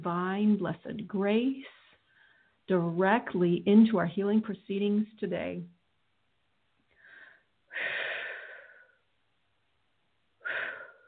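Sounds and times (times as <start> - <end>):
speech: 0.0 - 1.8, 2.7 - 5.8
deep breathing: 1.7 - 2.6, 6.9 - 9.1, 10.4 - 11.0.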